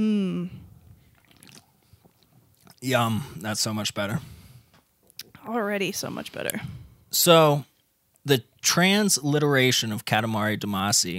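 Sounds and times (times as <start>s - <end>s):
person humming a brief vocal tone: 0.0s - 0.6s
faint wet mouth sounds: 0.0s - 2.9s
sipping and swallowing of a freshly opened beer: 0.5s - 3.0s
soft liquid clicks: 1.0s - 2.8s
speech: 2.8s - 4.4s, 5.4s - 11.1s.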